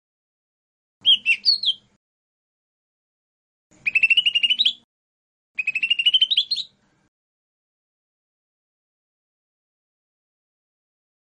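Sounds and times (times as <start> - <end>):
lesser green leafbird song trills: 1.0 - 2.0, 3.7 - 4.9, 5.6 - 6.8.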